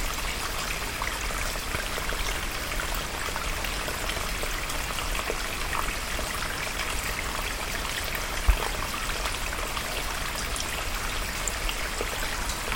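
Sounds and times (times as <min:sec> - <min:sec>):
small mountain brook rushing across a hiking trail: 0:00.0 - 0:12.7.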